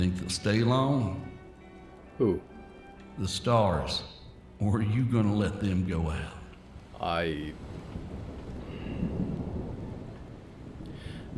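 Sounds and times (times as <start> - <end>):
speech: 0.0 - 1.3, 2.2 - 2.5, 3.2 - 6.4, 7.0 - 8.1
distant rolling thunder: 6.3 - 11.3.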